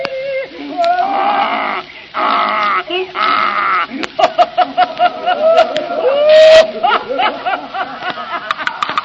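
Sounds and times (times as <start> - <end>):
man imitating a donkey braying: 0.7 - 4.2, 5.2 - 6.9
man making choppy pulsing laughter-like noises: 1.1 - 9.0.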